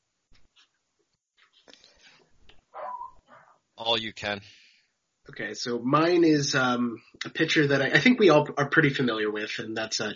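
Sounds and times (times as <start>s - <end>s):
dog barking: 2.7s - 3.6s
dog whimpering: 2.8s - 3.5s
speech: 3.8s - 4.6s, 5.3s - 10.1s.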